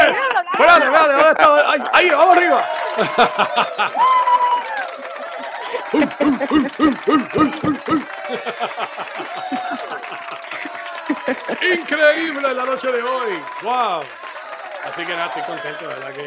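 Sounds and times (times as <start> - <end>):
overlapping cheering voices: 0.0 - 16.2
speech: 1.3 - 4.2, 5.9 - 9.6, 11.6 - 16.2
crowd applauding: 1.4 - 16.2
bursts of laughter: 2.8 - 4.3, 5.2 - 12.2.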